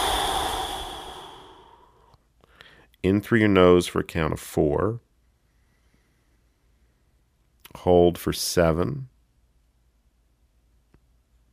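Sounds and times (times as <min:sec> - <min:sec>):
long complete exhale through the mouth during a guided breathing exercise: 0:00.0 - 0:02.8
speech: 0:03.0 - 0:05.1, 0:07.8 - 0:09.1.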